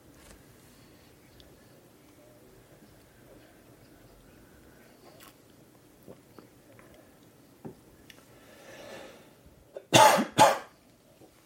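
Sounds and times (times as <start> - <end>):
person coughing: 9.8 - 10.7.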